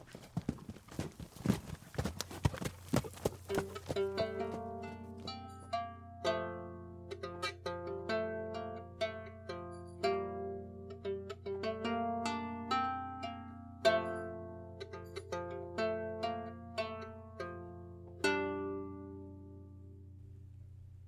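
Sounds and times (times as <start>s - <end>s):
horse hooves clip-clopping: 0.0s - 5.4s
gentle melodic music with plucked ringing notes: 3.5s - 20.4s.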